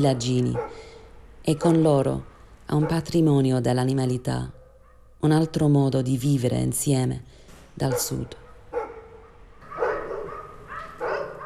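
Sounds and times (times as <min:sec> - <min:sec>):
speech: 0:00.0 - 0:04.6, 0:05.2 - 0:08.4
low steady hum: 0:00.0 - 0:11.4
dogs barking: 0:00.4 - 0:03.3, 0:04.5 - 0:05.2, 0:07.8 - 0:11.4.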